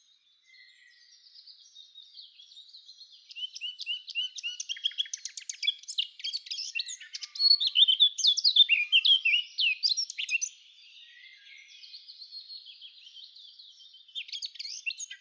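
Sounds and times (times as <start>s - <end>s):
Eurasian blackcap Sylvia atricapilla singing: 0.0s - 15.2s.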